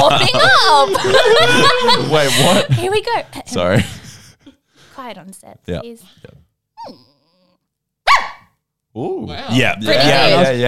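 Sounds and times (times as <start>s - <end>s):
laughter: 0.0s - 4.4s, 9.6s - 10.6s
speech: 0.2s - 4.0s, 5.0s - 7.1s, 9.0s - 10.6s
person imitating a small Bichon Frise dog growling and barking: 6.8s - 7.6s.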